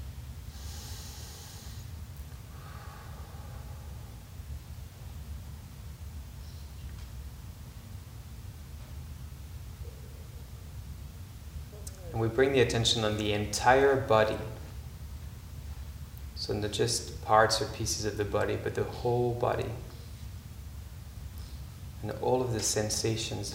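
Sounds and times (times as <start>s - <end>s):
steady low hiss: 0.0s - 23.5s
slow deep breaths: 0.4s - 4.7s
speech: 12.2s - 14.6s, 16.5s - 19.9s, 22.1s - 23.5s.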